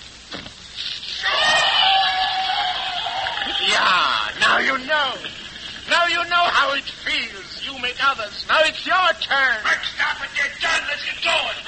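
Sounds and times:
several people screaming: 0:01.2 - 0:04.8
speech: 0:06.7 - 0:11.6.

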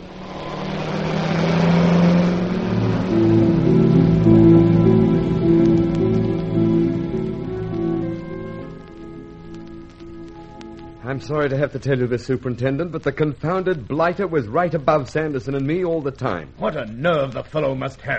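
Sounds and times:
car engine revving and driving off: 0:00.0 - 0:08.0
speech: 0:11.2 - 0:18.1.

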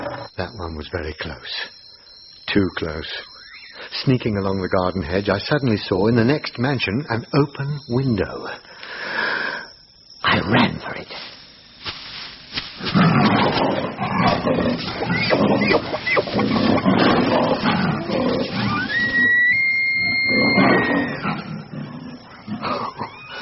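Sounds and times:
speech: 0:00.4 - 0:01.8, 0:02.5 - 0:03.3, 0:03.9 - 0:09.2, 0:10.3 - 0:11.3, 0:14.4 - 0:18.6
heavy scuffling of leaping tiger: 0:11.1 - 0:19.0
tiger roaring and snarling: 0:12.9 - 0:19.3, 0:20.0 - 0:23.3.

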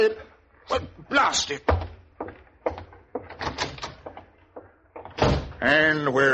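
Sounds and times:
speech: 0:00.0 - 0:02.4, 0:05.6 - 0:06.3
wooden knocks of a door: 0:01.6 - 0:05.6
door creaking: 0:02.7 - 0:05.8
door latch clunks: 0:03.2 - 0:04.3.

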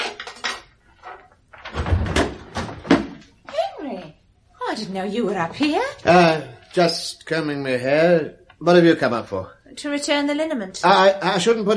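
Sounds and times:
screwdriver and objects clattering in a cupboard: 0:00.0 - 0:03.3
speech: 0:04.8 - 0:11.7.

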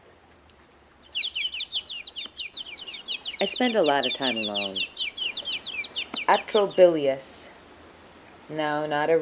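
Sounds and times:
birds chirping on a restored lakeside prairie in Chicago: 0:01.0 - 0:07.6
speech: 0:03.4 - 0:05.0, 0:06.3 - 0:07.4, 0:08.5 - 0:09.2.

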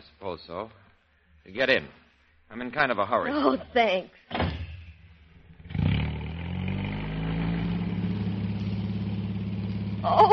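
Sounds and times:
speech: 0:00.2 - 0:00.8, 0:01.4 - 0:04.4, 0:10.0 - 0:10.3
motor car engine running: 0:05.3 - 0:10.3.

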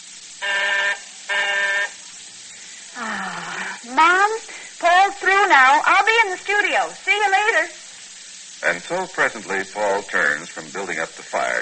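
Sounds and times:
electric buzzer with a harsh raspy tone: 0:00.4 - 0:02.2
faint hiss: 0:01.8 - 0:11.6
speech: 0:06.4 - 0:07.8, 0:08.6 - 0:11.6.

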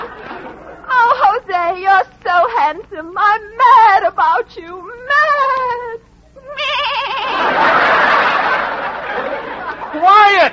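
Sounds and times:
laughter: 0:00.0 - 0:01.4, 0:06.6 - 0:10.5
speech: 0:02.7 - 0:06.0
young goat bleating: 0:06.4 - 0:07.3.

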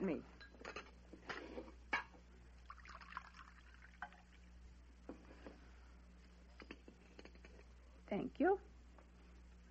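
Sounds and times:
speech: 0:00.0 - 0:00.4, 0:08.1 - 0:08.7
coffee pouring into a cup: 0:02.6 - 0:04.5.

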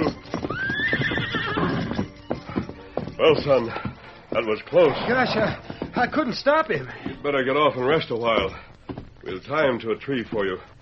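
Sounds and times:
quick clip-clopping hoofbeats during a chase: 0:00.0 - 0:10.8
wild horse neighing in a high whinny: 0:00.4 - 0:02.2, 0:04.7 - 0:05.7
speech: 0:03.2 - 0:08.7, 0:09.3 - 0:10.7.

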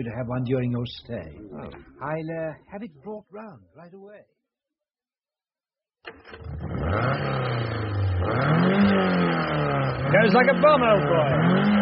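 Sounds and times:
speech: 0:00.0 - 0:04.4, 0:06.0 - 0:09.2, 0:09.9 - 0:11.8
car engine cranking, idling and revving: 0:06.1 - 0:11.8.

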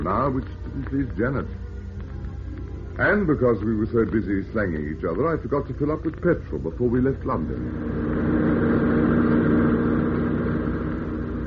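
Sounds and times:
speech: 0:00.0 - 0:01.7, 0:03.0 - 0:08.3
car engine drone driving fast: 0:00.0 - 0:11.4
road roar of car driving fast: 0:00.0 - 0:11.4.

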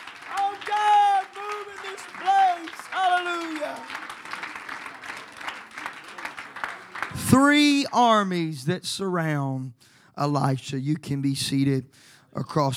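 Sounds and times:
people shouting and cheering at a church service: 0:00.0 - 0:04.0
audience clapping at a church service: 0:00.0 - 0:07.7
speech: 0:07.3 - 0:12.7.

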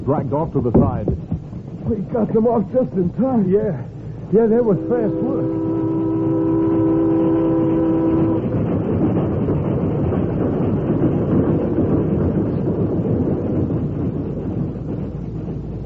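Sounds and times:
speech: 0:00.0 - 0:05.7
steam train engine and cars rumbling past: 0:00.0 - 0:15.8
steam train whistle sounding a chord: 0:04.6 - 0:08.6.

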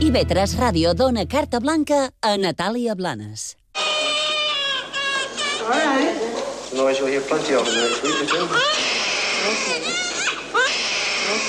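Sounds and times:
speech: 0:00.1 - 0:03.6, 0:05.7 - 0:10.0
newborn baby crying loudly: 0:03.7 - 0:06.4, 0:07.4 - 0:11.4.

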